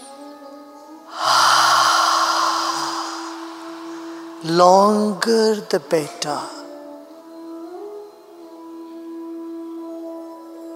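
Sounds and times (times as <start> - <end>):
deep inhale: 1.1 - 5.6
speech: 4.4 - 6.6.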